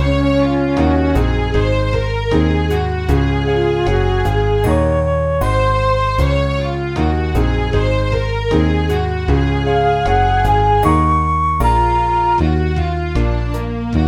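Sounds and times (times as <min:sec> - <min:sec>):
show tune: 0:00.2 - 0:14.0.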